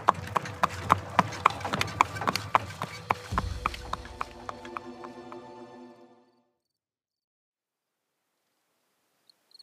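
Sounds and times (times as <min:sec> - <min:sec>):
horse-drawn carriage hooves clip-clopping by moonlight: 0:00.0 - 0:05.7.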